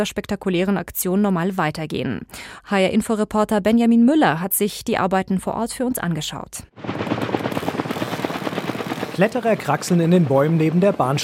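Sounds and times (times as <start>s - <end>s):
speech: 0.0s - 7.2s, 9.2s - 11.2s
helicopter hovering overhead, rotor beating: 6.8s - 11.2s.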